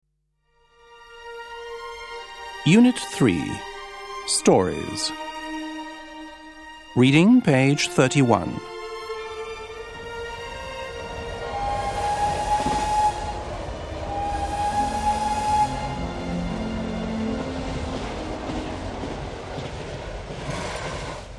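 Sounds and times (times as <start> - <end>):
speech: 2.6 - 3.7, 4.3 - 5.2, 7.0 - 8.7
Eurostar high-speed train rushing along the rails towards Paris: 7.3 - 21.3
Eurostar high-speed train horn blasts: 8.6 - 19.0.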